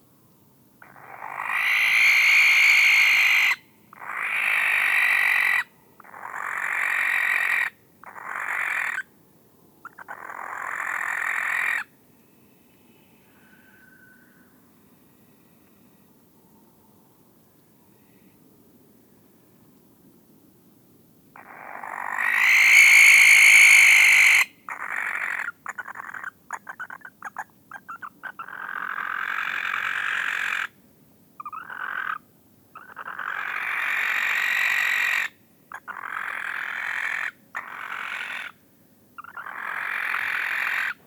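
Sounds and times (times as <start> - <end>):
barn owl calling: 0.8 - 9.1, 9.8 - 11.9, 21.4 - 30.8, 31.4 - 32.2, 32.8 - 38.6, 39.2 - 41.0.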